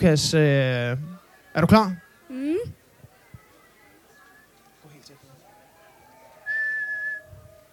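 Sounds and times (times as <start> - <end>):
speech: 0.0 - 2.8
faint voices: 0.0 - 7.7
child whistling a clear high steady note: 6.5 - 7.4.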